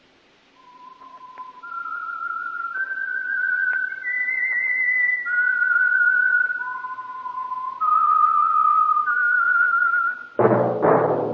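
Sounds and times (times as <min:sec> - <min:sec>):
solo whistled radio program theme melody: 0:00.6 - 0:10.7.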